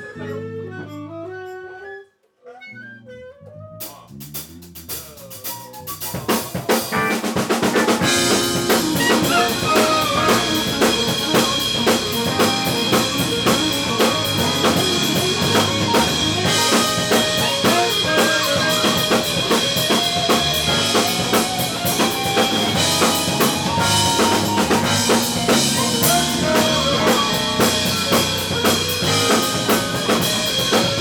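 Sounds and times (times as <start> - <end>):
voice: 4.9 - 31.0
guitar solo at a dress rehearsal: 6.9 - 31.0.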